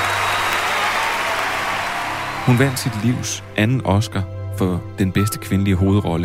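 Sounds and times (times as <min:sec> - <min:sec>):
large crowd applauding at a film award ceremony: 0:00.0 - 0:03.6
speech: 0:02.5 - 0:06.2.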